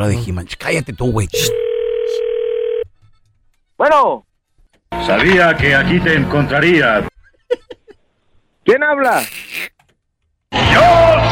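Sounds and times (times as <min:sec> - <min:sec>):
speech: 0:00.0 - 0:02.3, 0:03.8 - 0:04.3, 0:05.0 - 0:07.1, 0:08.7 - 0:09.7
telephone dial tone while placing a call: 0:01.5 - 0:02.8
laughter: 0:07.1 - 0:08.0.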